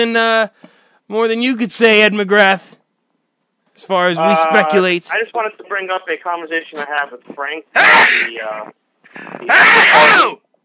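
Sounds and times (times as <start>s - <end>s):
speech: 0.0s - 2.8s, 3.8s - 10.6s
loud exaggerated sneeze into a head-mounted microphone covered by a hand: 7.8s - 8.3s, 9.2s - 10.4s.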